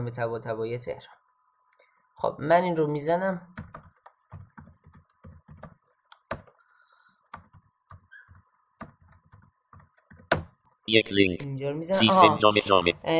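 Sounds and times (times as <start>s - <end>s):
speech: 0.0s - 1.2s, 2.2s - 3.8s, 10.9s - 13.1s
computer keyboard typing a search: 3.5s - 6.6s, 7.2s - 10.6s.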